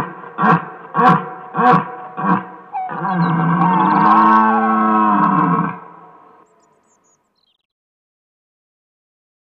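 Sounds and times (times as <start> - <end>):
red deer roaring: 0.0 - 6.5.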